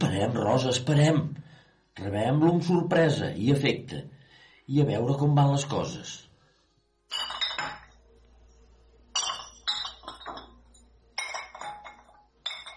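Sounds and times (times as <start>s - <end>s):
speech: 0.1s - 1.4s, 2.0s - 6.2s
glass bottles clinking while bottling wine: 7.1s - 8.1s, 9.1s - 12.7s.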